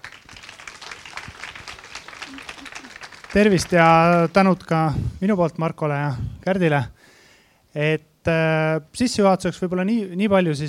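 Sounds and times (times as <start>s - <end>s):
audience applause: 0.0s - 4.6s
speech: 3.3s - 7.0s, 7.7s - 10.6s.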